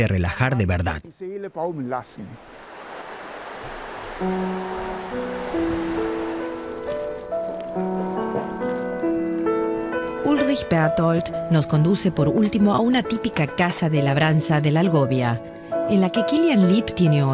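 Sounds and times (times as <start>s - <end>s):
speech: 0.0s - 2.7s, 3.6s - 5.7s, 10.5s - 17.3s
gentle music with sustained notes: 1.6s - 17.3s
clear mountain river water rushing: 2.4s - 8.9s.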